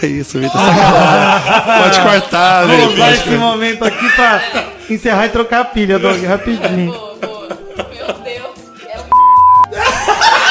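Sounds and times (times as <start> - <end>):
speech: 0.0 - 7.1
laughter: 0.4 - 4.9, 5.8 - 9.1, 9.7 - 10.4
steady censor beep over a spoken name: 9.1 - 9.7.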